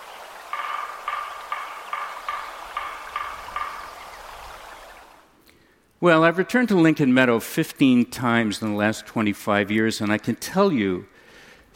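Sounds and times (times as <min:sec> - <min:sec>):
woodpecker harsh raspy calls: 0:00.0 - 0:05.4
speech: 0:06.0 - 0:11.1.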